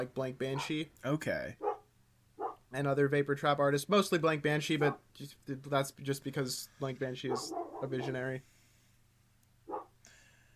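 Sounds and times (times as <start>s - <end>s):
speech: 0.0s - 1.7s, 2.7s - 8.6s
faint hiss: 0.0s - 10.5s
single short dog bark: 1.6s - 2.7s, 7.3s - 8.2s, 9.7s - 10.0s.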